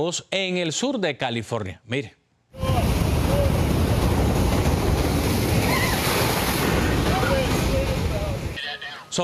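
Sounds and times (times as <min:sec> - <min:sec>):
speech: 0:00.0 - 0:02.2
wind: 0:02.5 - 0:09.2
heavy surf waves crashing against boardwalk seawall in Long Beach southern California: 0:02.6 - 0:08.6.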